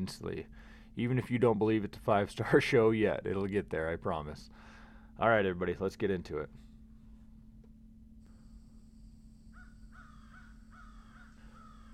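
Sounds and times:
speech: 0:00.0 - 0:06.6
faint high-pitched whine: 0:00.0 - 0:11.9
steady low hum: 0:00.0 - 0:11.9
crow cawing: 0:09.5 - 0:11.9.

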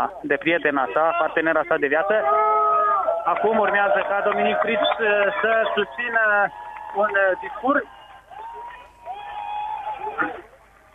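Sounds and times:
speech: 0:00.0 - 0:08.0
crowd cheering in the Opera Square: 0:01.0 - 0:10.9
sustained shout or whistle: 0:07.8 - 0:10.2.

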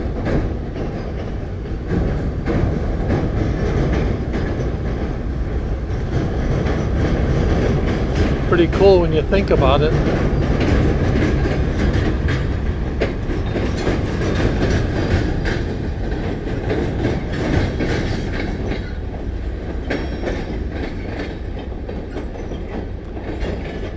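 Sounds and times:
train rolling across a railway bridge: 0:00.0 - 0:23.9
speech: 0:08.6 - 0:10.3.

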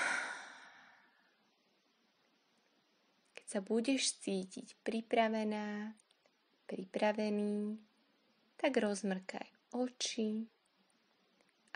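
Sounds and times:
slow breathy exhale after a deep breath: 0:00.0 - 0:01.4
speech: 0:03.5 - 0:06.0, 0:06.7 - 0:07.9, 0:08.6 - 0:10.6.

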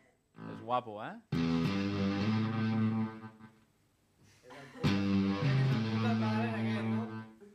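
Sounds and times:
speech: 0:00.7 - 0:01.8
electric guitar played through a fuzz pedal with grainy sputtering tone: 0:01.3 - 0:03.5, 0:04.8 - 0:07.3.

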